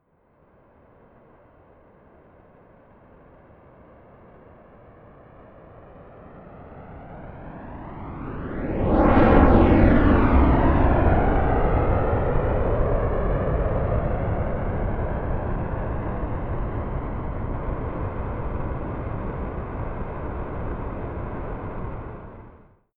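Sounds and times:
distant Rafale military jet flyby, fast, left to right: 5.2s - 22.7s.

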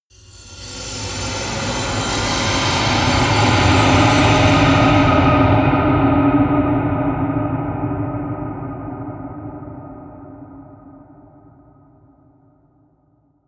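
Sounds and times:
heavy eerie industrial swell: 0.2s - 10.1s.

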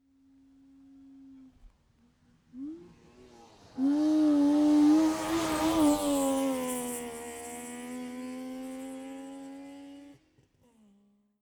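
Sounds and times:
Saab 92 car passing right to left: 2.4s - 10.2s.

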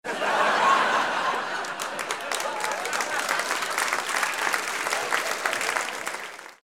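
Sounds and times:
laughter: 0.0s - 5.9s
applause: 1.3s - 6.6s.

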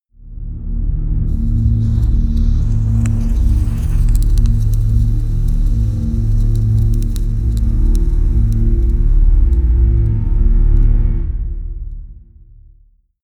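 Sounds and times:
horror atmosphere synth pad: 1.3s - 11.5s.

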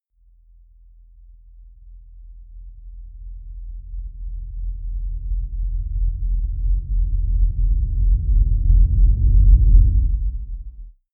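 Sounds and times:
deep sub synth noise rumble: 2.4s - 10.9s.

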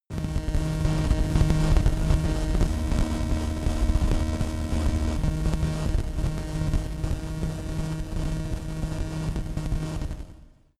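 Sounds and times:
long science fiction static crackle: 0.1s - 10.7s.

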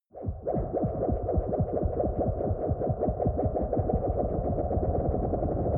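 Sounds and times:
ufo take-off wobble: 0.2s - 5.6s.

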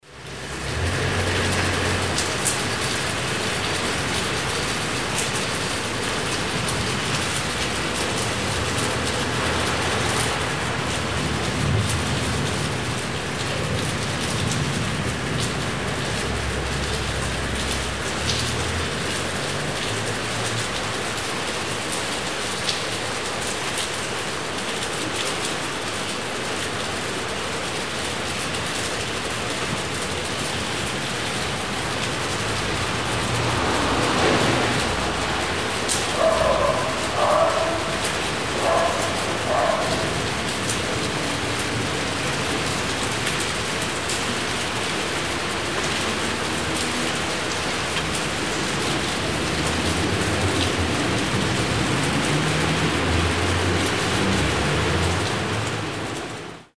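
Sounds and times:
rain in a city: 0.0s - 56.7s.

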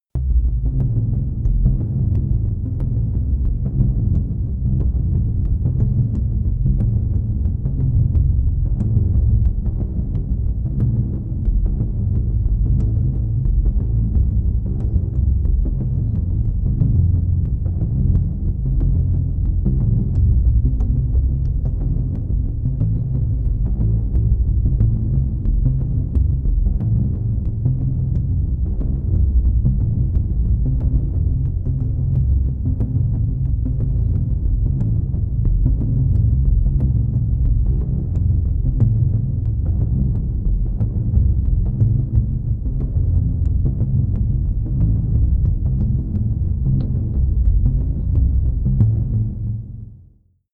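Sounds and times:
sequenced bass in a big room: 0.0s - 50.2s.

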